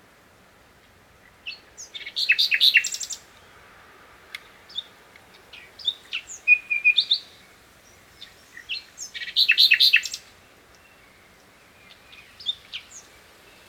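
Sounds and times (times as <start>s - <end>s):
common nightingale Luscinia megarhynchos song: 1.1s - 13.6s.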